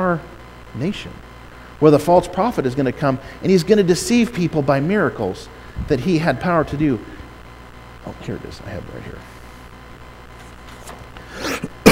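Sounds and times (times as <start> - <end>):
speech: 0.1 - 7.2, 8.0 - 9.3
harsh cough: 11.3 - 11.9.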